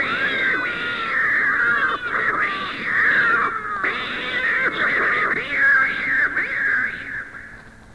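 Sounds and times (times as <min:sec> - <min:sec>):
domestic cats yowling and screeching in a cat fight: 0:00.0 - 0:06.1.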